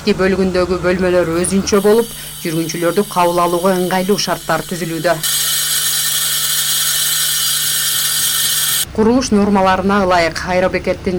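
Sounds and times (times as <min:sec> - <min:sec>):
speech: 0:00.0 - 0:05.5, 0:09.0 - 0:11.1
heavy construction machinery leveling ground at an airport terminal building site: 0:00.0 - 0:08.9.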